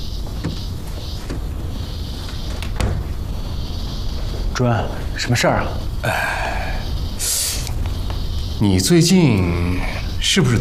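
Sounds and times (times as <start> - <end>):
steady hiss: 0.0 - 10.5
office door pushed shut with a dull thud: 2.6 - 3.2
speech: 4.6 - 6.5, 8.6 - 10.5.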